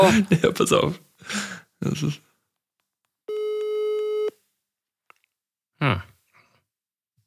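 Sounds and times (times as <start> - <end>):
speech: 0.0 - 2.2, 5.8 - 6.1
telephone call tone beep on the line: 3.3 - 4.3.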